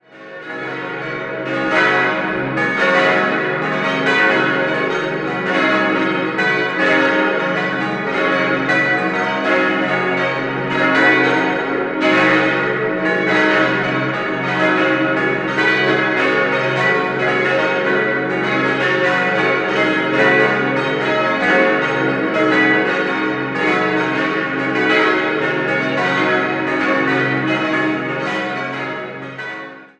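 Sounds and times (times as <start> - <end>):
parish church bells ringing in Roppen: 0.0 - 29.9.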